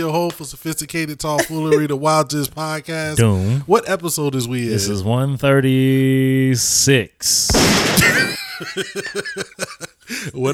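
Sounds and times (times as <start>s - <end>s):
speech: 0.0s - 10.5s
person's short rhythmic snickering laughter: 1.4s - 1.8s, 8.0s - 10.0s
laughter: 1.4s - 1.9s, 3.2s - 3.6s, 7.9s - 10.5s
gunshot sound effects: 7.5s - 8.3s.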